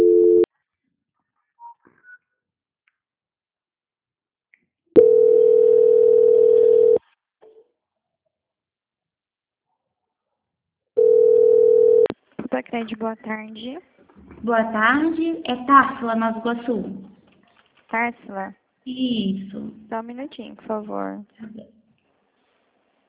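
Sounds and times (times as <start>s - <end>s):
dial tone on a phone line while a call is being transferred: 0.0s - 0.5s, 5.0s - 7.0s, 11.0s - 12.1s
speech: 12.8s - 17.1s, 17.9s - 21.8s.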